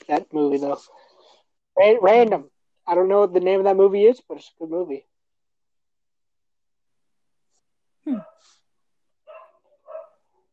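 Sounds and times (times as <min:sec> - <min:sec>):
speech: 0:00.1 - 0:01.1, 0:01.8 - 0:05.1
dog barking: 0:09.2 - 0:10.5.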